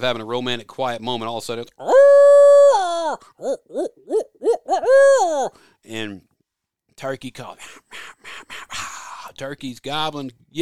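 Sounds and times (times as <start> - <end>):
speech: 0.0 - 2.0, 3.4 - 6.3, 7.0 - 8.6, 9.4 - 10.5
owl hooting: 1.8 - 5.6.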